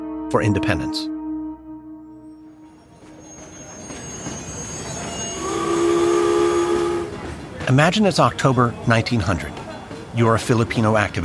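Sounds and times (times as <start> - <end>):
speech: 0.3 - 1.1, 7.7 - 9.5, 10.1 - 11.2
train rolling into downtown Philadelphia: 2.5 - 11.2
train wheels squealing: 2.6 - 7.4.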